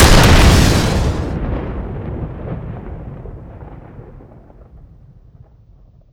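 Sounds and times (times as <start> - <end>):
bigger stick weapon shot: 0.0 - 1.4.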